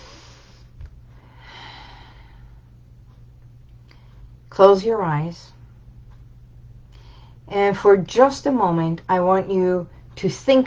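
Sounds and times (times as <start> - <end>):
slow deep breath: 0.0 - 2.7, 6.9 - 7.4
steady low hum: 0.0 - 10.6
speech: 4.6 - 5.6, 7.5 - 10.6.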